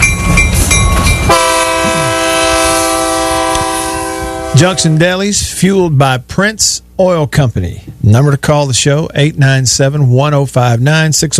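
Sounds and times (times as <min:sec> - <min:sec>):
train sound effect rumbling and clattering: 0:00.0 - 0:04.9
train horn blast: 0:01.0 - 0:05.0
speech: 0:04.6 - 0:11.3.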